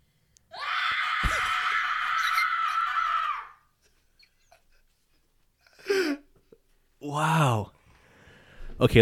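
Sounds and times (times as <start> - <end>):
woman screaming in terror: 0.5 - 3.7
speech: 8.8 - 8.9.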